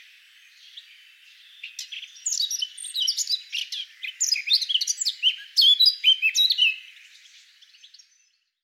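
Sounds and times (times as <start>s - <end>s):
Eurasian blackcap Sylvia atricapilla warbling song: 0.0s - 8.4s.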